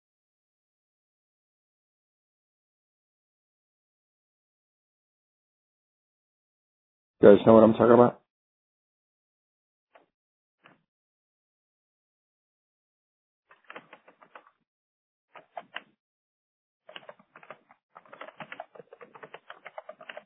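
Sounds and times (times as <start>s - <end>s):
speech: 7.2s - 8.2s
rapid computer keyboard typing: 13.5s - 14.6s, 15.4s - 15.9s, 16.9s - 20.2s.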